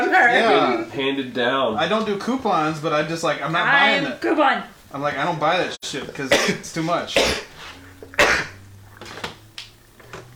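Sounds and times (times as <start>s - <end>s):
low steady hum: 0.0s - 10.3s
speech: 0.1s - 7.5s
loud sneeze: 6.3s - 8.6s.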